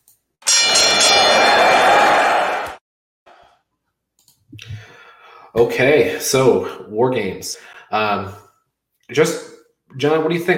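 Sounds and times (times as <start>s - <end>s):
loud harsh bell ringing: 0.4s - 2.6s
speech: 5.5s - 8.4s, 9.1s - 10.5s.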